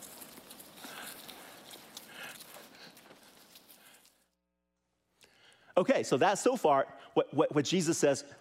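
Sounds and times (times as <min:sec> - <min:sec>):
flock of sheep scampering off on the ground: 0:00.0 - 0:04.1
speech: 0:05.8 - 0:08.3.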